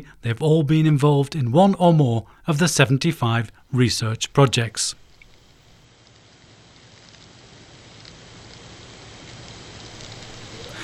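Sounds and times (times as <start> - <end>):
speech: 0.0 - 5.0
black soldier fly larvae crawling en masse: 4.0 - 10.8.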